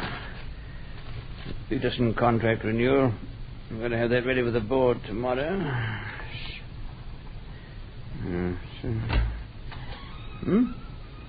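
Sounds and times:
low indoor background: 0.0 - 11.2
speech: 1.7 - 6.1, 8.4 - 9.2, 10.4 - 10.8
door creaking open: 8.9 - 11.2.

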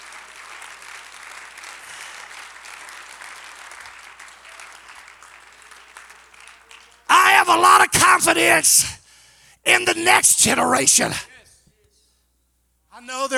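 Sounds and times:
audience clapping hands: 0.0 - 8.8
speech: 7.5 - 9.0, 9.6 - 11.3.

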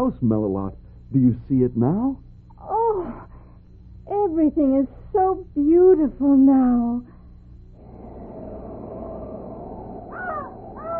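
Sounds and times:
speech: 0.0 - 3.3, 4.1 - 7.1
raven croaking: 7.8 - 10.9.

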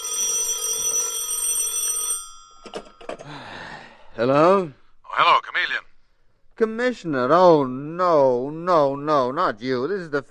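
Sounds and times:
telephone ringing: 0.0 - 3.2
speech: 2.7 - 3.6, 4.2 - 5.8, 6.6 - 10.2.

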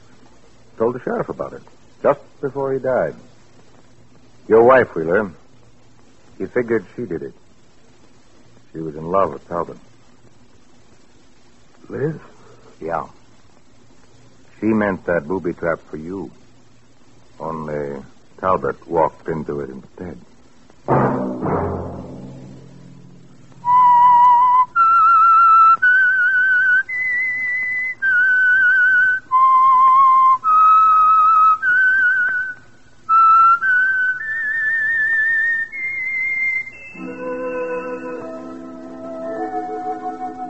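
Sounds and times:
speech: 0.8 - 3.3, 4.5 - 5.4, 6.4 - 7.4, 8.7 - 9.9, 11.9 - 13.2, 14.6 - 16.4, 17.4 - 20.3
low sustained musical tones: 20.9 - 25.5, 36.7 - 40.4
whistled slow theme tune: 23.6 - 40.4.

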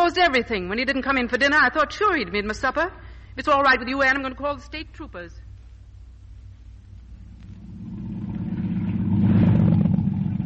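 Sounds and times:
speech: 0.1 - 5.4
motorboat engine rumbling: 7.1 - 10.4.

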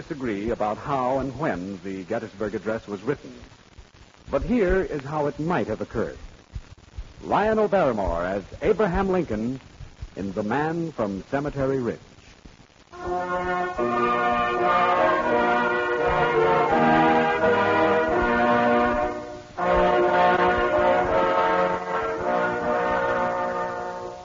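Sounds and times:
speech: 0.0 - 3.6, 4.3 - 6.3, 7.2 - 12.1, 13.0 - 14.9
steam train whistle in the hills of Pennsylvania: 13.0 - 24.2.

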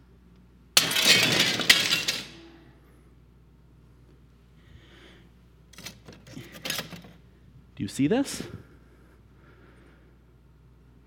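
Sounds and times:
plain non-safety glass shattering: 0.8 - 2.5
speech: 7.8 - 8.7.

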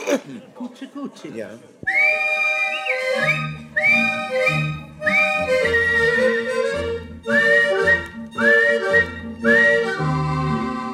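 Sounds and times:
speech: 0.1 - 2.4, 3.2 - 6.3
person whistling a bright repeating tune: 1.9 - 6.6, 7.3 - 10.3
steady instrumental accompaniment: 1.9 - 10.9.

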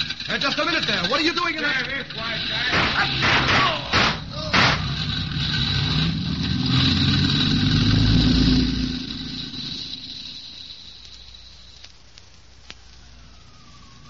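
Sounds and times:
car engine rumbling in an alley: 0.0 - 11.7
speech: 0.4 - 3.9
brief sharp knock: 2.7 - 4.9.

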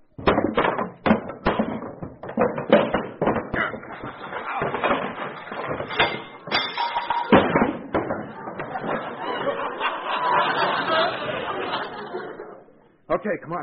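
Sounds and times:
heavy junk being dragged and shoved away from an apartment door: 0.3 - 9.1
laughter: 8.1 - 12.8
speech: 13.2 - 13.6.

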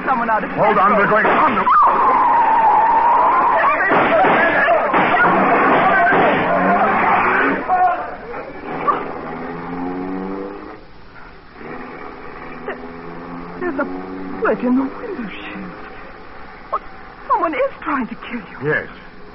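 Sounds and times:
car engine roaring: 0.0 - 18.3
rumbling traffic: 0.0 - 19.3
speech: 0.1 - 2.3, 3.9 - 4.6, 13.8 - 15.4, 17.5 - 19.3
car tires screeching in a skid: 0.7 - 10.8, 11.4 - 17.2
sharp knocks of a car striking a person: 3.9 - 6.5.

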